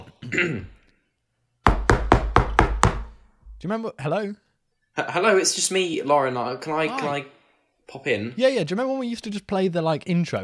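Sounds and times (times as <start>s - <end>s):
speech: 0.3s - 0.8s, 3.6s - 4.4s, 5.0s - 10.4s
quick knocks on a door: 1.7s - 3.6s.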